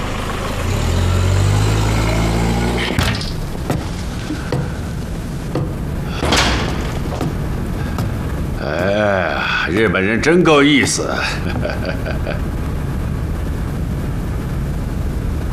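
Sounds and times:
car engine rumbling: 0.0 - 15.5
sharp slam: 2.8 - 8.6
scattered clicks and knocks: 3.0 - 8.9
laughter: 8.6 - 12.5
speech: 9.8 - 12.6.

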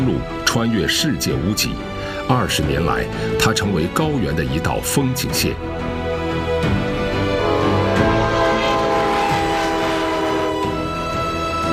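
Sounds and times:
speech: 0.2 - 6.0
train roaring along a high-plateau railway: 7.2 - 11.6
train horn-like tones: 7.3 - 11.2.

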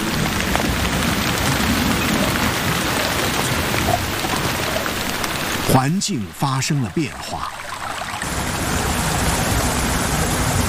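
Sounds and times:
heavy monsoon rain falling: 0.0 - 10.6
speech: 5.7 - 7.8.

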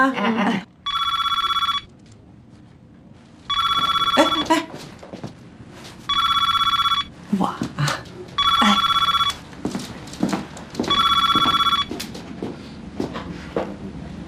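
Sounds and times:
telephone ringing in a domestic-services agency office in Beijing: 0.8 - 1.9, 3.5 - 4.7, 6.1 - 7.1, 8.4 - 9.4, 10.9 - 12.0
faint clatter: 0.9 - 13.9.

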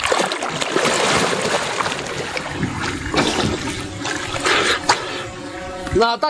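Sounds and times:
water splashing as a firefighter steps down into a river: 0.0 - 6.0.

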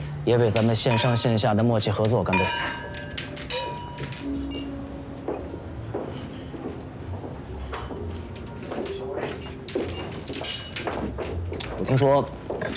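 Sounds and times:
glasses clinking in a toast to a business partnership: 0.5 - 4.9, 6.0 - 6.8, 9.2 - 12.7.

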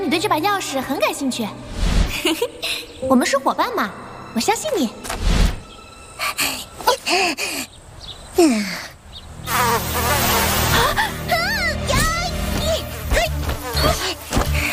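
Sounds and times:
speech: 0.2 - 5.2, 7.1 - 7.6, 8.4 - 8.8
swarm of mosquitoes buzzing: 9.3 - 14.7.

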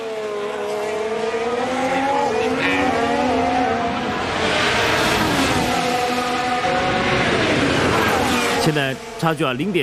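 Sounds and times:
racing car engines screaming through corners: 0.0 - 9.8
tire squeal: 2.4 - 8.8
speech: 8.7 - 9.8.

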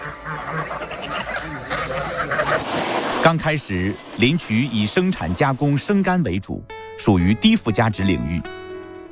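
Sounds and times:
crowded flock of Landes geese honking in a forestry district: 0.0 - 5.0
speech: 3.2 - 8.6.

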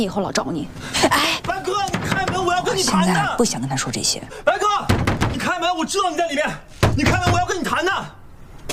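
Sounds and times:
agitated voices talking: 0.2 - 8.2
fist pounding on a door: 1.4 - 2.7, 4.8 - 5.5, 6.8 - 7.5.

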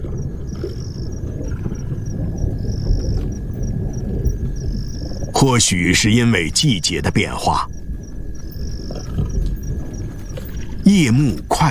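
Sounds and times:
low rumble of thunder from an approaching storm: 0.0 - 11.6
speech: 5.4 - 7.8, 10.9 - 11.6.

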